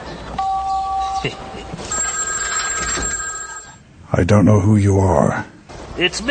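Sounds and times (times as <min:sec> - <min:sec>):
telephone ringing with electronic tones after dialing a cellular phone: 0:00.4 - 0:03.8
speech: 0:01.2 - 0:01.4, 0:04.2 - 0:06.2.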